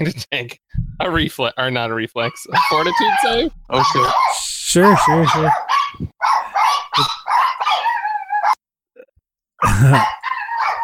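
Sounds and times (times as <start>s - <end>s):
speech: 0.0s - 6.1s, 9.6s - 10.2s
chihuahuas yapping in shrill rapid bursts: 2.5s - 8.6s, 9.9s - 10.8s.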